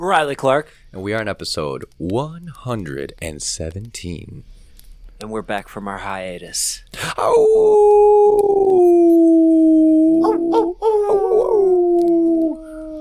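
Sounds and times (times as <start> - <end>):
speech: 0.0 - 4.5, 5.2 - 8.7
human voices mimicking dog howls: 7.3 - 12.9.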